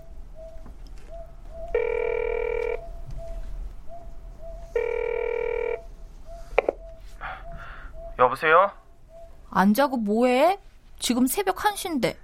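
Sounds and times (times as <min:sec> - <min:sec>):
long electronic phone line ringing: 0:01.7 - 0:02.8, 0:04.8 - 0:05.9
telephone number being dialed: 0:01.8 - 0:02.8
speech: 0:08.4 - 0:08.8, 0:09.6 - 0:12.2.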